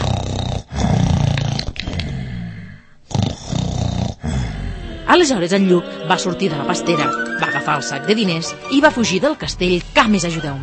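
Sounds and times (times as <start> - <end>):
loud deep rumbling snores of a giant asleep in a castle: 0.0 - 5.1
speech: 5.1 - 10.6.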